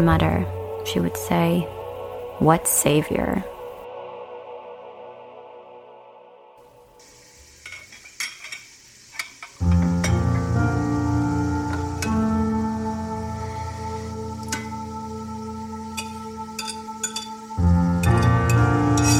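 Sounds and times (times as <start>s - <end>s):
speech: 0.0s - 1.8s, 2.4s - 3.5s
grease sizzling and popping in a frying pan: 6.6s - 19.1s.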